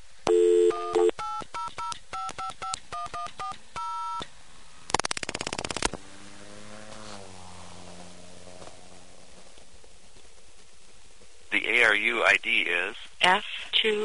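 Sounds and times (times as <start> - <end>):
buzzing telephone line signal: 0.3 - 1.1
telephone keypad tones dialing a number: 0.3 - 4.3
speech: 12.1 - 14.0.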